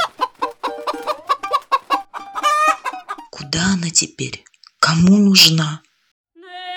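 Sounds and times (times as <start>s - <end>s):
frightened hen clucking rapidly as it runs off: 0.0s - 4.0s
speech: 3.5s - 5.8s.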